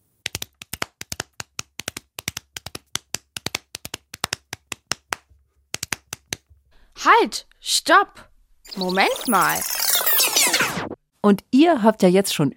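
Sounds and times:
hands clapping a rhythm: 0:00.2 - 0:06.5
speech: 0:07.0 - 0:09.9, 0:11.2 - 0:12.5.

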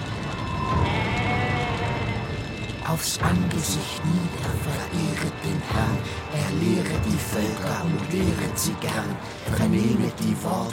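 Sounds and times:
busy background of animal noise: 0:00.6 - 0:02.4
goats bleating: 0:00.6 - 0:02.4
speech: 0:02.9 - 0:10.7.

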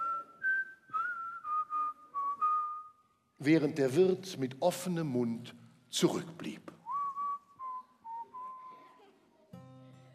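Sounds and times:
person whistling a cheerful bouncy tune: 0:00.0 - 0:03.1, 0:06.8 - 0:08.8
speech: 0:03.4 - 0:06.8.

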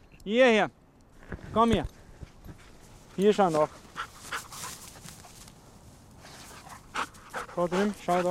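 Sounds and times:
speech: 0:00.2 - 0:00.8, 0:01.5 - 0:02.0, 0:03.2 - 0:03.8, 0:07.6 - 0:08.2
steady rustling: 0:01.2 - 0:08.2
hunting dog snuffling while searching during a rabbit hunt: 0:03.4 - 0:05.5, 0:06.2 - 0:08.2.

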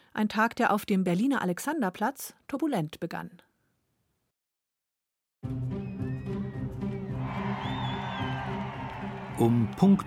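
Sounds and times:
speech: 0:00.2 - 0:03.5, 0:05.4 - 0:06.0, 0:09.4 - 0:10.0
large crowd cheering: 0:06.0 - 0:10.0
joyful shouting and whoops with high-pitched cries: 0:07.2 - 0:10.0.

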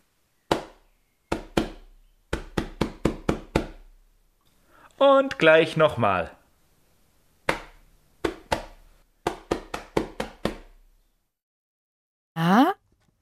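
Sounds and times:
hands beating a pillow: 0:00.5 - 0:03.9, 0:07.5 - 0:10.8
speech: 0:05.0 - 0:06.4.

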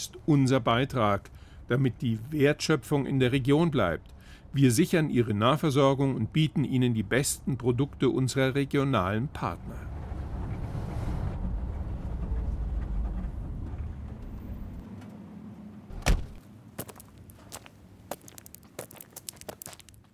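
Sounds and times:
speech: 0:00.0 - 0:10.0
car engine rumbling: 0:09.5 - 0:16.5
solid thunk: 0:15.9 - 0:16.4
crunching clicks on loose gravel: 0:16.3 - 0:20.1.

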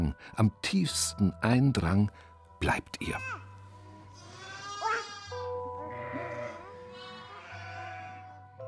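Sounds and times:
speech: 0:00.1 - 0:03.5
sheep bleating: 0:04.2 - 0:08.4.

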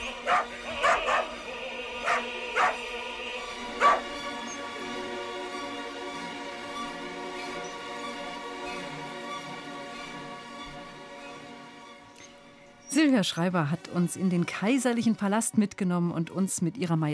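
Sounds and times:
pack of dachshunds barking: 0:00.0 - 0:01.4, 0:02.0 - 0:03.0, 0:03.7 - 0:04.2
speech: 0:13.1 - 0:17.1.

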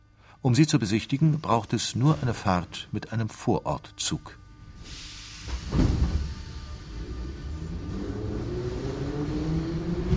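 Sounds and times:
speech: 0:00.4 - 0:04.4
St. Petersburg metro train with 1950s-era carriages rattling through a tunnel: 0:04.7 - 0:10.1
heavy clunk: 0:05.5 - 0:06.5.

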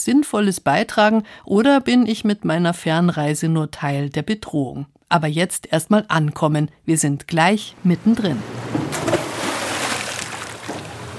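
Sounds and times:
speech: 0:00.0 - 0:09.2
boat noise: 0:07.7 - 0:11.1
anchor splashing into shallow water: 0:08.5 - 0:11.1.

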